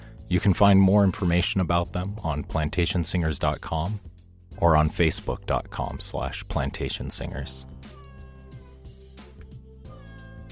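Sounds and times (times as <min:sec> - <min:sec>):
speech: 0:00.3 - 0:08.0
cat meowing: 0:07.7 - 0:08.8.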